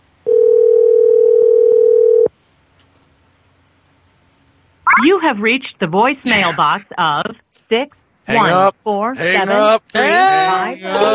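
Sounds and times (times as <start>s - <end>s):
telephone dial tone while placing a call: 0.3s - 2.3s
speech: 5.2s - 11.1s.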